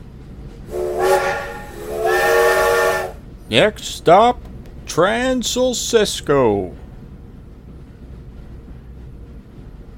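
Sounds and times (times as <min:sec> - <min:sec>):
steam train whistle blasts: 0:00.7 - 0:03.2
speech: 0:03.5 - 0:06.8.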